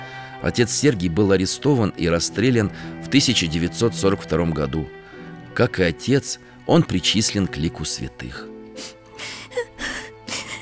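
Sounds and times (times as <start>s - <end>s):
speech: 0.4s - 5.0s, 5.6s - 9.0s
girl crying softly with sniffles: 8.8s - 10.5s.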